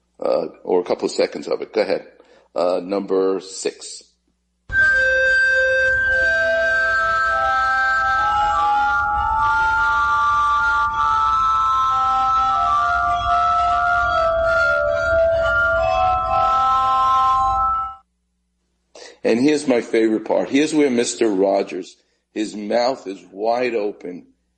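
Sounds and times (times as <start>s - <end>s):
speech: 0.2s - 4.1s, 19.3s - 24.3s
glass harmonica playing a classical piece live: 4.7s - 18.0s.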